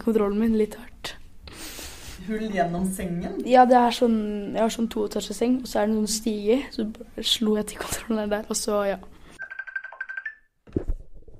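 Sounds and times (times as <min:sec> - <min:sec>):
speech: 0:00.0 - 0:01.0, 0:02.2 - 0:09.2
phone ringing with an electronic trill: 0:09.4 - 0:10.5.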